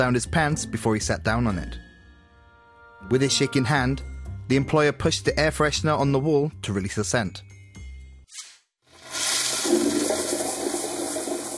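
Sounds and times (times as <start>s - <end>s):
speech: 0.0s - 1.9s, 3.0s - 7.5s
toilet flushing: 8.9s - 11.5s.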